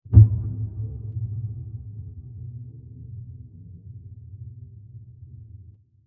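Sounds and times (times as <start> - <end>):
diffuse low impact: 0.1 - 2.5.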